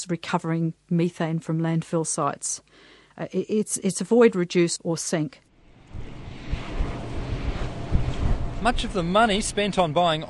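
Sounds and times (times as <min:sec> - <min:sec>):
speech: 0:00.0 - 0:06.1, 0:08.6 - 0:10.2
130 wind turbines turning at a hilltop wind farm above Palmerston North: 0:05.6 - 0:10.2.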